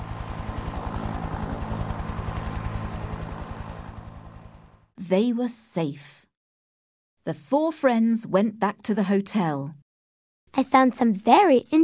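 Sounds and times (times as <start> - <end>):
helicopter arriving with rotor thumping and engine roar: 0.0 - 4.9
speech: 5.1 - 6.2, 7.2 - 9.8, 10.5 - 11.8.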